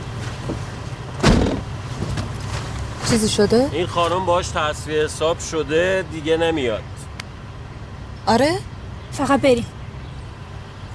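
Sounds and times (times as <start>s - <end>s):
vehicle rumbling: 0.0s - 10.9s
car door shutting: 0.4s - 2.4s
speech: 3.1s - 7.0s, 8.3s - 9.8s.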